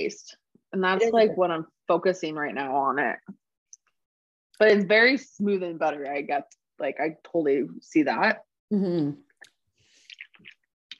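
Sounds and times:
speech: 0:00.0 - 0:03.4, 0:04.6 - 0:09.2
small mouth sound: 0:08.7 - 0:10.9
swallow: 0:09.0 - 0:10.9
person sipping water with slurping: 0:09.3 - 0:10.9.

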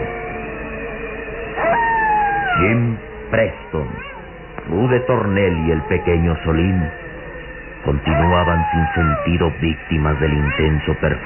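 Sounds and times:
steady ambient background: 0:00.0 - 0:11.2
wolves howling: 0:00.0 - 0:11.2
speech: 0:02.6 - 0:04.1, 0:04.7 - 0:07.0, 0:07.8 - 0:11.2.

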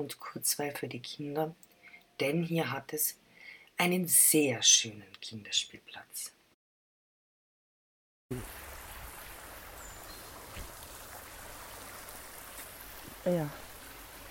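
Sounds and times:
speech: 0:00.0 - 0:03.2, 0:03.8 - 0:06.4, 0:08.3 - 0:08.7, 0:13.2 - 0:13.6
steady rush of flowing brook water: 0:08.3 - 0:14.2.

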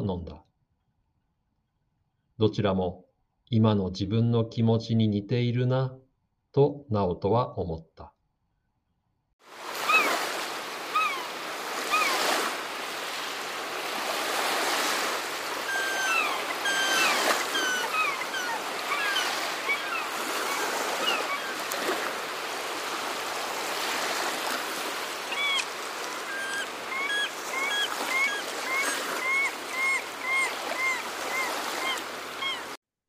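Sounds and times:
speech: 0:02.4 - 0:06.0, 0:06.6 - 0:08.1
ocean waves washing on the shore: 0:09.4 - 0:32.8
faint high bird calls above the water: 0:09.8 - 0:10.2, 0:10.9 - 0:12.3, 0:15.0 - 0:22.2, 0:25.1 - 0:32.8.

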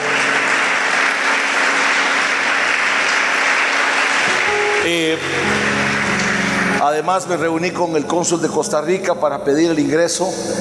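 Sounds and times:
dense crowd applause: 0:00.0 - 0:06.8
speech: 0:04.8 - 0:05.8, 0:06.8 - 0:10.6.

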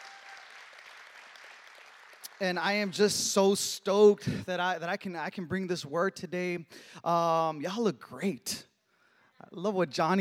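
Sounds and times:
crowd applauding in a room: 0:00.0 - 0:03.2
speech: 0:02.4 - 0:08.7, 0:09.4 - 0:10.1.

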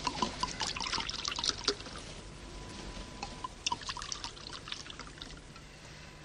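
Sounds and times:
homemade wine pouring into glasses: 0:00.0 - 0:02.0, 0:03.2 - 0:05.6.

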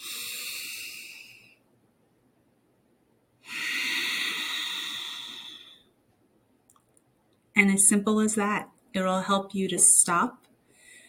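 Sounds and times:
slow deep breathing during a breathing exercise: 0:00.0 - 0:01.6, 0:03.4 - 0:06.0, 0:10.6 - 0:11.0
speech: 0:07.6 - 0:10.5.

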